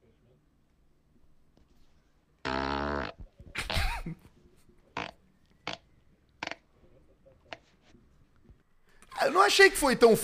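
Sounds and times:
squeaky fart: 2.4s - 4.1s, 4.9s - 6.7s
speech: 4.0s - 4.3s, 9.2s - 10.2s.

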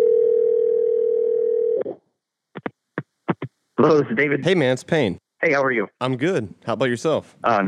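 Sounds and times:
telephone dial tone: 0.0s - 1.9s
speech: 3.8s - 7.6s.

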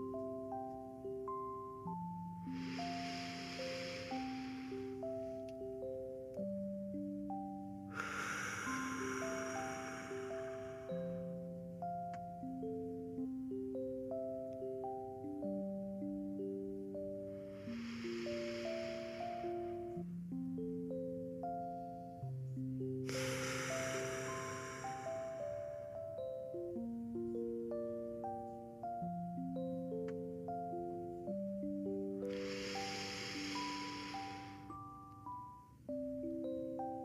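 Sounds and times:
soft sustained music: 0.0s - 37.0s
deep slow breaths during a relaxation exercise: 1.9s - 6.2s, 7.9s - 11.9s, 16.9s - 20.7s, 23.0s - 26.7s, 31.8s - 35.0s.

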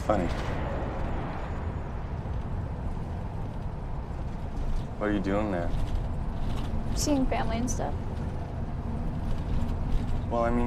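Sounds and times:
moving bus engine drone: 0.0s - 10.6s
road noise inside a moving bus: 0.0s - 10.6s
speech: 0.1s - 0.7s, 5.0s - 5.9s, 6.5s - 8.0s, 10.3s - 10.6s.

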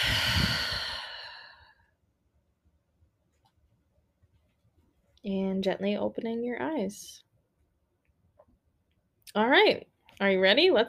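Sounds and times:
deep breath in through nose and out through mouth during a breathing exercise: 0.0s - 2.0s
speech: 5.2s - 7.3s, 9.3s - 10.8s.

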